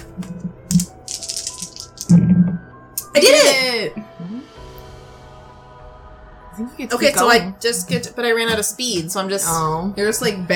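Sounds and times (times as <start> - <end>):
speech: 0.2 - 0.5, 3.2 - 4.2, 6.6 - 10.5
four dice rolling on a hard surface: 0.7 - 2.1.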